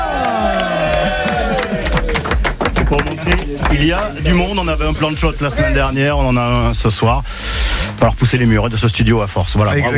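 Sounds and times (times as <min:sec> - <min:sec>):
studio audience cheering and applauding for a visiting sports team: 0:00.0 - 0:04.4
speech: 0:03.0 - 0:09.9.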